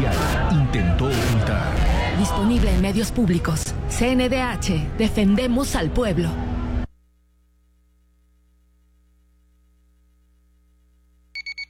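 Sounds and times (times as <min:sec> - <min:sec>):
speech: 0:00.5 - 0:06.4
steady low hum: 0:00.8 - 0:11.3
alarm clock bright electronic beeps: 0:11.4 - 0:11.6.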